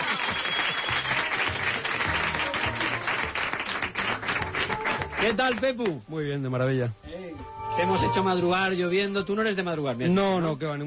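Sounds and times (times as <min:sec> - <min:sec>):
audience applause for a guest: 0:00.0 - 0:05.7
speech: 0:05.2 - 0:10.8.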